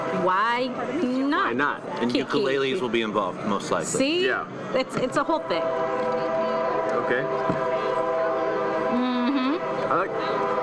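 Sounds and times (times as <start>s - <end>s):
train horn blaring: 0.0s - 1.2s, 5.2s - 10.6s
speech: 0.2s - 6.1s, 7.0s - 7.8s.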